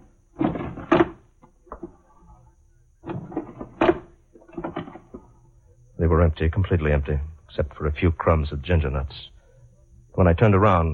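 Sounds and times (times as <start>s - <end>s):
wooden desk drawers sliding open and shut: 0.4s - 1.2s, 3.0s - 5.2s
speech: 6.0s - 9.4s, 10.2s - 10.9s.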